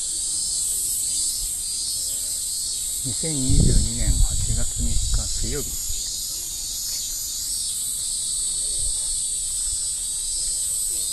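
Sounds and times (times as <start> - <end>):
cicadas singing on an August day: 0.0 - 11.1
speech: 3.0 - 5.9.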